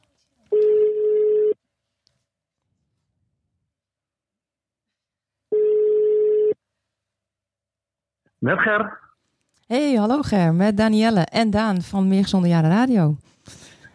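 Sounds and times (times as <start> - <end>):
outgoing telephone call ringback tone: 0.6 - 1.6, 5.5 - 6.6
speech: 8.4 - 9.1, 9.7 - 13.7.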